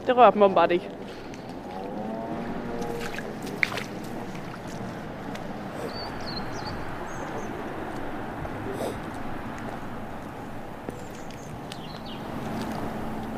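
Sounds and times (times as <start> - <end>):
engine noise: 0.0 - 13.3
rumble of water: 0.0 - 13.3
speech: 0.1 - 1.2
European robin singing: 5.8 - 7.8, 11.0 - 12.3.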